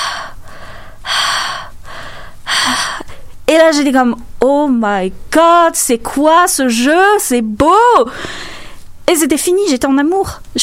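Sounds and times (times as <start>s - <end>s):
person imitating a video game character's heavy breathing: 0.0s - 3.3s, 8.1s - 8.8s
speech: 3.6s - 8.5s, 9.1s - 10.6s.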